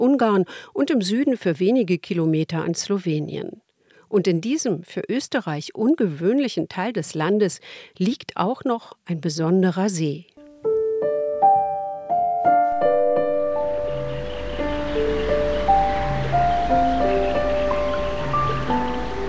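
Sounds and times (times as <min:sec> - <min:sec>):
speech: 0:00.0 - 0:10.3
soft melodic music: 0:10.4 - 0:19.2
wind rushing through reeds on the shore of Lake Neusiedl in Austria: 0:13.7 - 0:19.2.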